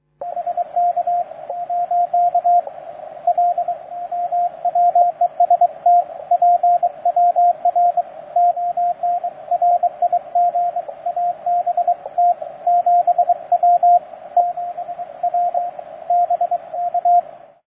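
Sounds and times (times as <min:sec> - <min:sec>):
HAM radio signal on 80m received on beverage antenna: 0:00.0 - 0:17.6.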